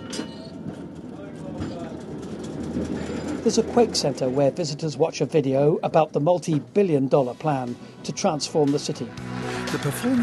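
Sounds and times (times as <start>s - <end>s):
tourist tram rumbling along its rails: 0.0s - 10.2s
speech: 2.9s - 10.2s.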